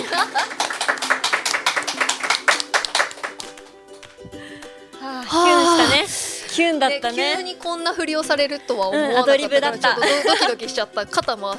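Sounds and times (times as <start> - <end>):
laughter: 0.0 - 1.2, 8.7 - 10.7
audience clapping at a live event: 0.0 - 4.2
speech: 6.6 - 11.5.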